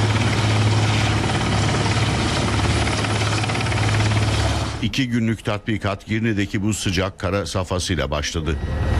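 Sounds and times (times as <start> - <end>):
helicopter engine whine and rotor chop during a search and rescue exercise in Girne: 0.0 - 4.8
speech: 4.8 - 8.9.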